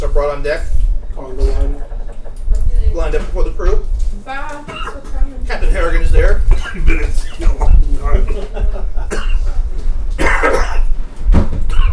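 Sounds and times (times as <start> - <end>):
speech: 0.2 - 1.9, 3.0 - 8.8
laughter: 1.2 - 2.6, 6.7 - 9.7
person coughing after hot pepper jack cheese went down the wrong way: 4.7 - 5.2, 6.5 - 7.7, 9.1 - 9.6, 10.2 - 10.9, 11.7 - 11.9.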